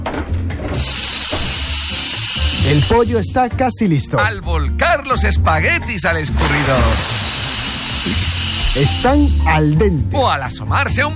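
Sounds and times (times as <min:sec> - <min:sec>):
steam hissing as an oven is opened: 0:00.8 - 0:03.3, 0:06.4 - 0:09.6
speech: 0:02.7 - 0:07.3, 0:08.0 - 0:11.1.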